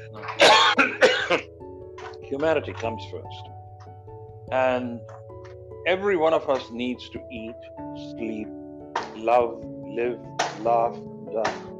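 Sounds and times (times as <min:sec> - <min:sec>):
person coughing and clearing their throat: 0:00.3 - 0:01.5
speech: 0:02.3 - 0:03.6, 0:04.5 - 0:05.2, 0:05.8 - 0:08.6, 0:09.2 - 0:11.7.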